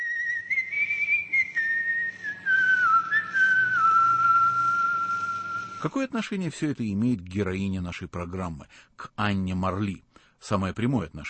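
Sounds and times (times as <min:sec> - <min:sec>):
actor whistling a radio station call-sign melody: 0:00.0 - 0:05.9
speech: 0:05.8 - 0:11.2.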